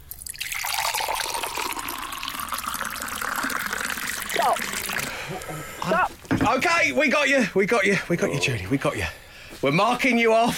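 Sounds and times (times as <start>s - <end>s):
water pouring into a jar: 0.0s - 5.3s
speech: 5.4s - 10.5s.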